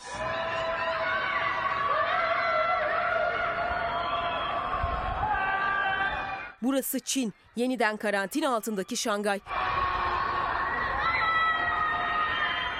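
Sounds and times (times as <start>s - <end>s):
crowd crying out and wailing at night in Shanghai, China under quarantine: 0.0s - 6.6s, 8.6s - 12.7s
speech: 6.6s - 9.7s.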